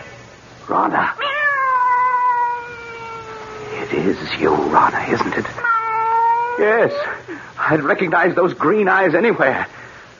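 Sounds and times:
speech: 0.7 - 1.3, 4.0 - 5.7, 6.6 - 9.8
cat meowing: 1.2 - 3.9, 5.6 - 7.0.

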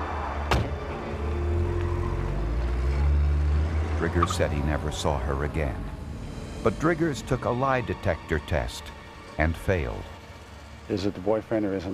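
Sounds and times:
white car engine rumbling as it pulls away: 0.0 - 11.9
brief thump: 0.5 - 0.8
speech: 4.0 - 6.0, 6.6 - 10.1, 10.9 - 11.9.

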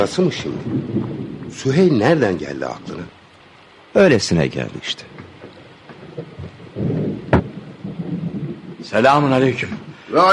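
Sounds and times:
sharp thunder crack: 0.0 - 3.1, 5.1 - 10.3
speech: 0.0 - 3.2, 3.9 - 5.2, 8.8 - 10.3
heavy rain: 0.0 - 10.3
low rumbles of thunder: 0.0 - 10.3.

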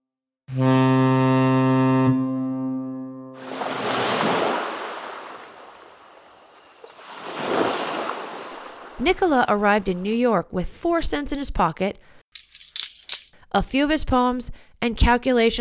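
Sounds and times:
deep ship's horn blast: 0.5 - 3.4
loud rushing ocean waves: 3.4 - 5.9, 7.0 - 9.0
speech: 9.0 - 12.2, 13.5 - 15.5.

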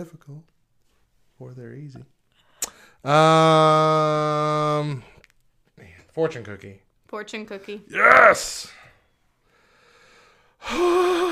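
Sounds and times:
speech: 0.0 - 0.6, 1.4 - 2.2, 3.0 - 5.1, 6.2 - 8.8, 10.6 - 11.3
heavy gasping breath: 9.4 - 11.3.

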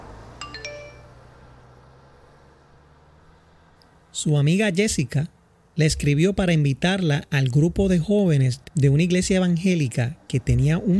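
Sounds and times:
cell phone text message alert chime: 0.4 - 1.2
speech: 4.2 - 10.9.

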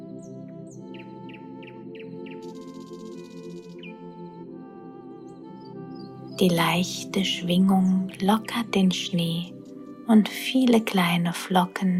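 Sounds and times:
bird singing bright repeated chirps: 0.2 - 4.3, 5.2 - 10.0
speech: 6.4 - 11.9.

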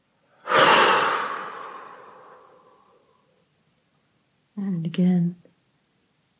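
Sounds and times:
deep breath released in a long airy exhale during a breathing exercise: 0.4 - 3.0
speech: 4.8 - 5.4.

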